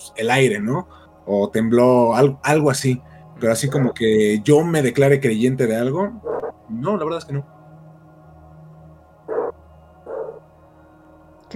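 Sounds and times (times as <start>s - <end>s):
speech: 0.1s - 7.6s
dogs barking: 6.2s - 6.5s, 9.3s - 10.4s.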